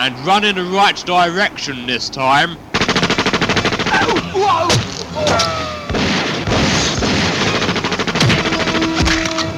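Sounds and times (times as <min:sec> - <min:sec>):
speech: 0:00.0 - 0:02.7, 0:04.0 - 0:05.6
machine-gun fire sound effect from an audio drama: 0:02.7 - 0:04.3, 0:05.9 - 0:09.4.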